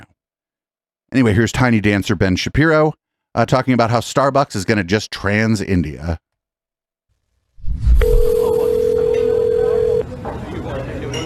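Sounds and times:
speech: 0:01.1 - 0:06.2
noise: 0:01.1 - 0:06.3, 0:07.1 - 0:11.2
telephone line ringing as a call is placed: 0:08.0 - 0:10.0.

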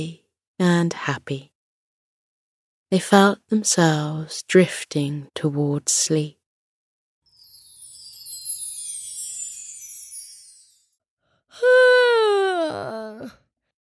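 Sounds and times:
speech: 0:00.0 - 0:01.5, 0:02.9 - 0:06.4, 0:12.7 - 0:13.4
person yawning: 0:11.6 - 0:13.4.

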